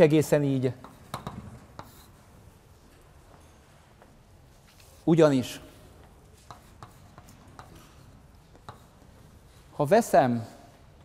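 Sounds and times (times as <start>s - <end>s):
speech: 0.0s - 0.9s, 5.1s - 5.7s, 9.8s - 10.6s
low noise: 0.0s - 11.0s
scratchy writing of an integration theorem: 0.8s - 2.4s, 6.4s - 9.7s.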